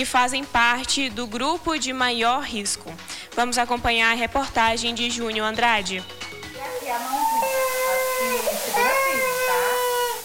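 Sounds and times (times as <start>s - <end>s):
speech: 0.0s - 7.2s
infant under one year old crying at a flu vaccination: 6.7s - 10.2s.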